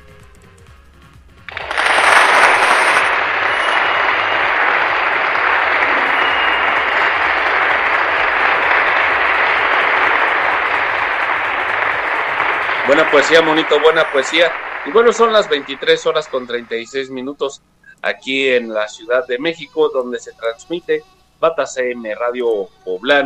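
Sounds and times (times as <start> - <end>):
crowd applauding with dense clapping: 1.5 - 17.4
speech: 12.9 - 23.2.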